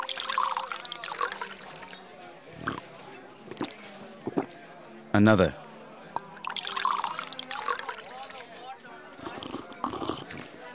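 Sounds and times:
whiskey pouring into a glass: 0.0 - 2.0, 2.6 - 2.8, 3.5 - 4.6, 6.1 - 8.4, 9.2 - 10.6
faint voices: 0.0 - 10.7
speech: 5.2 - 5.6.

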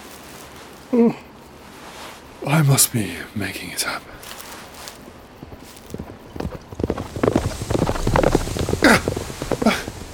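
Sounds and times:
hoofbeats of a large horse with a rider galloping past at night: 0.0 - 1.6, 4.0 - 10.1
speech: 0.9 - 1.3, 2.4 - 4.3.

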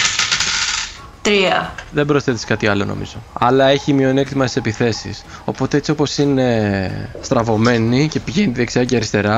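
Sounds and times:
small four-sided die rolling across a hard tabletop: 0.0 - 1.0
speech: 1.2 - 9.3.

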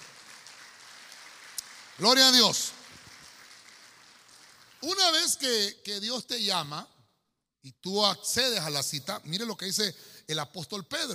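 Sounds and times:
sharp clap: 0.0 - 4.8
audience clapping hands: 0.0 - 5.4
speech: 2.0 - 2.7, 4.8 - 7.0, 7.6 - 11.1.

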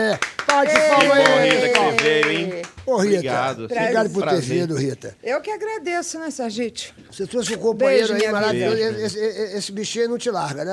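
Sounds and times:
crowd clapping to welcome a guest: 0.0 - 3.1
speech: 0.0 - 10.7.

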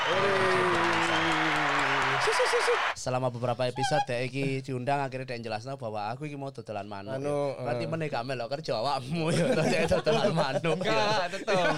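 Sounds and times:
person cheering: 0.0 - 2.9
group hand clapping: 0.0 - 3.0
speech: 2.3 - 11.7
laughter: 9.2 - 11.7.

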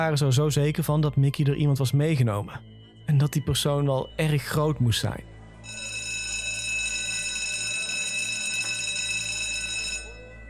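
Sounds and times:
speech: 0.0 - 5.8
school bell ringing: 5.6 - 10.4.

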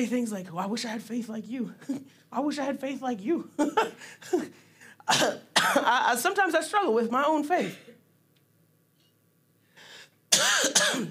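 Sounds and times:
speech: 0.0 - 7.8, 10.4 - 11.0
harsh coughs: 3.7 - 5.9, 10.3 - 11.0.

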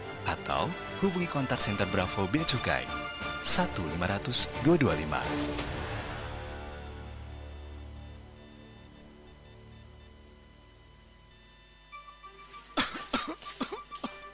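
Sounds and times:
speech: 0.3 - 5.8
man coughing heavily: 12.8 - 14.2.

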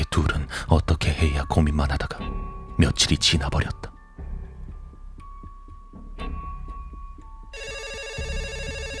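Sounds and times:
speech: 0.2 - 3.9
telephone ringing with electronic trilling tone: 7.5 - 8.9.

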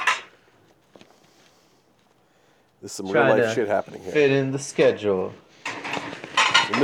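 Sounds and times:
dishes clattering while being washed: 0.0 - 0.3, 5.6 - 6.8
quiet kitchen clanking: 0.0 - 0.3, 5.6 - 6.8
speech: 2.8 - 5.4.

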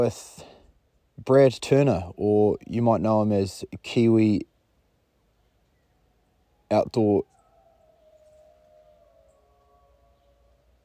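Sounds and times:
speech: 0.0 - 0.4, 1.2 - 4.5, 6.7 - 7.4
dog howling: 6.6 - 10.8.

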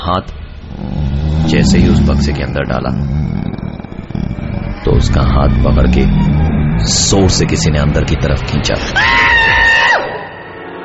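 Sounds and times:
speech: 0.0 - 3.4, 4.9 - 9.4
man screaming in fright: 9.0 - 10.2.

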